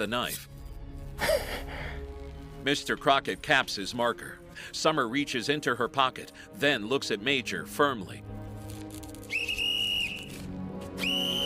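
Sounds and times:
speech: 0.0s - 0.5s, 1.2s - 1.8s, 2.6s - 8.3s
whistle blasts: 9.2s - 11.4s.

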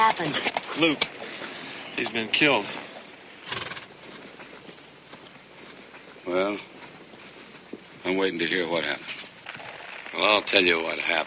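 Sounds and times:
faint rhythmic hoofbeats of a galloping horse: 0.0s - 11.2s
speech: 0.1s - 1.2s, 2.0s - 2.8s, 6.3s - 6.7s, 8.1s - 9.2s, 10.2s - 11.2s
horse whinnying: 3.4s - 3.9s.

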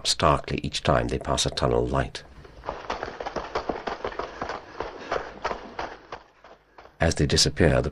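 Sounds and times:
speech: 0.0s - 2.3s, 7.0s - 7.9s
footsteps of two people jogging at a steady pace through a tunnel: 2.4s - 7.1s.

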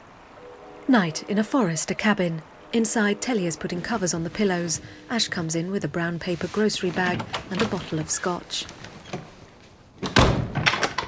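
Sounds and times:
speech: 0.9s - 9.3s
door being shut and bolted inside a forest cabin at night: 6.9s - 9.3s, 10.0s - 11.0s.

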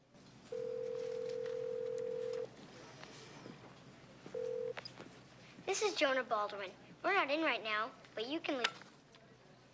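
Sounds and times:
telephone line tone as a number is dialed: 0.5s - 2.5s, 4.4s - 4.8s
speech: 5.7s - 8.8s.

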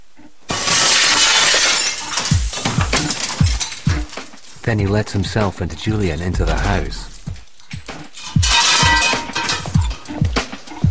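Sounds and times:
glass pane in a house back door being smashed: 0.5s - 4.6s, 8.1s - 10.0s
glass shards falling from a back door pane: 0.7s - 4.6s, 8.1s - 9.9s
speech: 4.7s - 7.1s.

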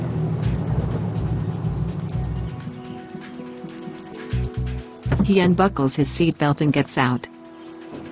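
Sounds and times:
police car engine rumbling as it rolls up to a house: 0.0s - 2.9s, 4.4s - 6.3s
speech: 5.3s - 7.4s.

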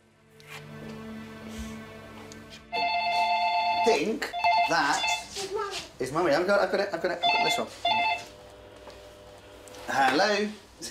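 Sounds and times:
telephone ringing with a bright electronic ringtone: 2.7s - 5.4s, 7.2s - 8.4s, 9.9s - 10.7s
speech: 3.8s - 8.2s, 9.9s - 10.8s.

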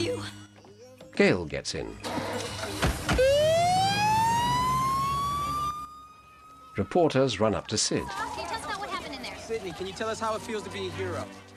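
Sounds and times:
speech: 1.2s - 2.8s, 6.8s - 8.4s, 9.5s - 11.4s
ambulance siren wailing: 3.1s - 11.2s.

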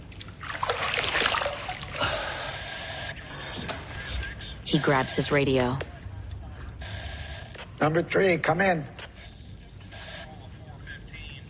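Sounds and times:
man splashing pool water on his face: 0.4s - 2.0s
speech: 4.7s - 5.9s, 7.8s - 9.0s.

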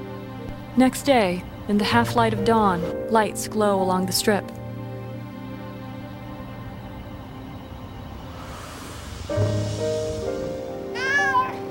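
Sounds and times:
low sustained humming tones: 0.0s - 11.0s
speech: 0.8s - 4.6s
cat meowing on a man's chest: 11.0s - 11.6s.

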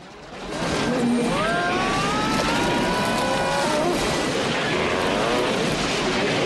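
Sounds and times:
helicopter rotor noise: 0.2s - 6.4s
redlining helicopter engine roaring as it careers towards jungle: 0.2s - 6.4s.

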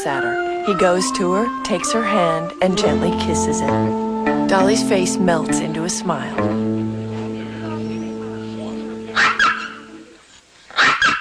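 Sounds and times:
speech: 0.0s - 6.9s
toy poodle barking in an apartment: 9.2s - 9.9s, 10.7s - 11.1s.

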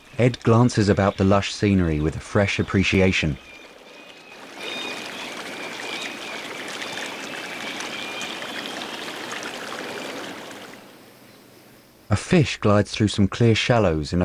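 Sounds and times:
speech: 0.2s - 3.5s, 12.1s - 14.2s
river flowing past a kayak: 2.4s - 11.0s.

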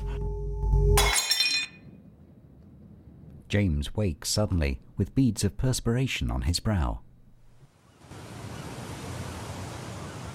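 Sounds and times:
porcelain doll head smashing: 1.0s - 1.8s
speech: 3.5s - 7.0s.

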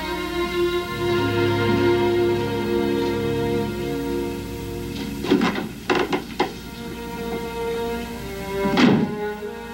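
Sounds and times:
soft musical background: 0.0s - 9.7s
wooden door thunks: 5.2s - 6.6s, 8.6s - 9.2s.

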